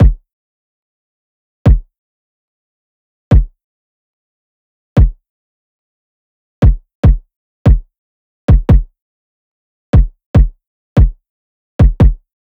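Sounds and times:
kick drum loop: 0.0s - 0.2s, 1.7s - 1.9s, 3.3s - 3.5s, 5.0s - 5.2s, 6.6s - 7.9s, 8.5s - 8.9s, 10.0s - 11.2s, 11.8s - 12.2s.

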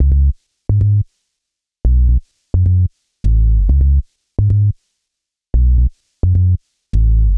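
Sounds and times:
bass loop: 0.0s - 1.0s, 1.8s - 4.7s, 5.6s - 7.3s.

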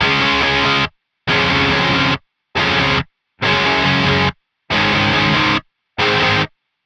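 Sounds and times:
distorted guitar in C sharp major: 0.0s - 6.6s.

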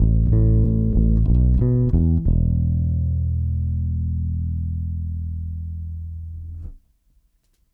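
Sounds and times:
analog funk bass: 0.0s - 7.1s.

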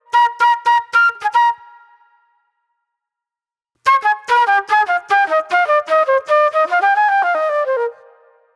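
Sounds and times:
raw funk flute: 0.0s - 1.9s, 3.9s - 8.4s.

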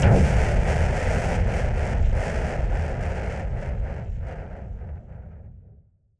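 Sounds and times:
filtered noise bomb boom: 0.0s - 4.1s.

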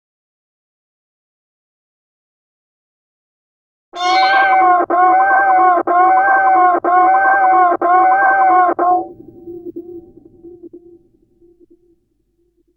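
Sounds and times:
transformed cello: 4.0s - 10.8s.

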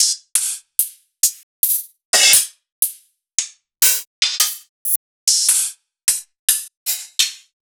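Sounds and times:
open hi-hat hits: 3.8s - 5.0s.

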